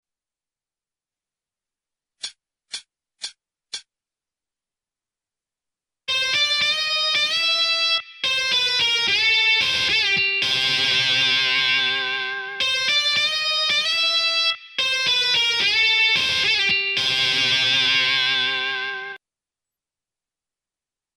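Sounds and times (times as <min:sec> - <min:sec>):
instrumental solo: 0:06.1 - 0:19.2.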